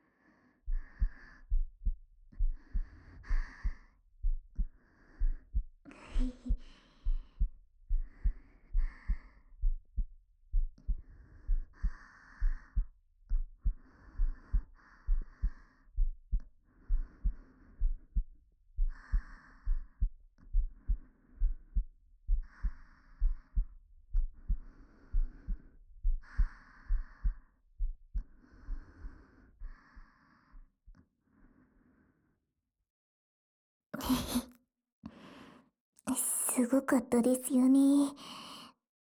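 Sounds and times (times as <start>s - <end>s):
heartbeat thumping heard close to the chest: 0.6s - 29.8s
speech: 36.6s - 38.4s.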